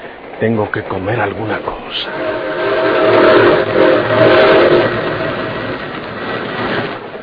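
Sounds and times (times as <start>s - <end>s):
train rolling rail rumble: 0.0s - 7.2s
speech: 0.4s - 2.5s
train whistle blowing as train approaches station: 2.0s - 5.8s.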